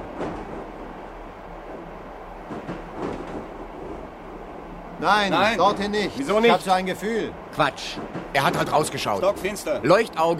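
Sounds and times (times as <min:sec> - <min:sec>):
train rumbling on rails: 0:00.0 - 0:10.3
train wheels clacking over rail joints: 0:02.2 - 0:10.3
speech: 0:05.0 - 0:10.3.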